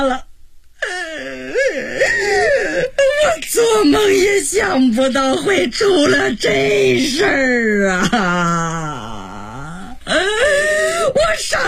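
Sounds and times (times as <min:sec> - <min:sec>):
speech: 0:00.0 - 0:00.3, 0:03.2 - 0:09.0
older woman wailing and crying: 0:00.0 - 0:03.9, 0:07.9 - 0:11.6.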